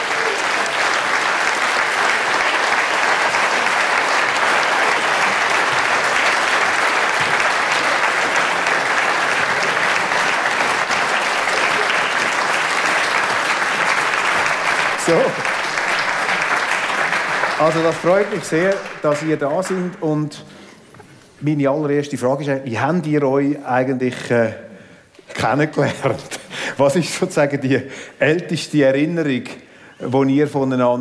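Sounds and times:
applause from a large audience: 0:00.0 - 0:20.0
speech: 0:17.6 - 0:20.6, 0:21.4 - 0:24.6, 0:25.4 - 0:30.9.

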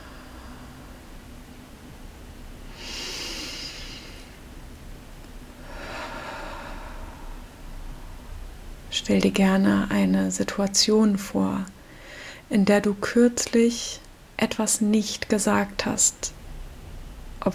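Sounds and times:
slow deliberate breathing during a guided mindfulness exercise: 0:00.0 - 0:01.2, 0:02.7 - 0:04.4, 0:05.6 - 0:08.6, 0:11.8 - 0:12.5
steady soft hiss: 0:00.0 - 0:17.5
speech: 0:09.0 - 0:11.8, 0:12.5 - 0:16.4.

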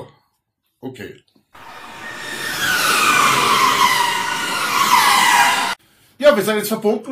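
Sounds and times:
speech: 0:00.8 - 0:01.7, 0:06.4 - 0:07.1
race car driving a fast lap during first free practice: 0:01.6 - 0:05.8.

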